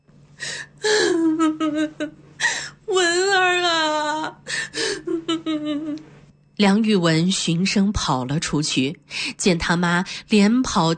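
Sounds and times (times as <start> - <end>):
woman crying in breathy sobs and a wavering wail: 0.4 - 6.0
speech: 1.7 - 2.2, 6.6 - 10.9.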